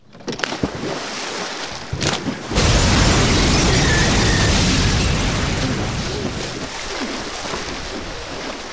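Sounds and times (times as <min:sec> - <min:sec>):
sharp cracks: 0:00.3 - 0:00.8, 0:02.0 - 0:07.7
debris and water crashing down: 0:01.9 - 0:08.7
explosion blasting rocks and earth into water: 0:02.5 - 0:06.9.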